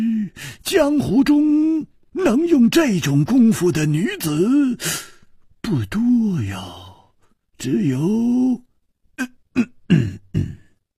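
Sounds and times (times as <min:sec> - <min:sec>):
speech: 0:00.6 - 0:05.1, 0:05.7 - 0:06.9, 0:07.6 - 0:10.6
man coughing: 0:09.6 - 0:10.8.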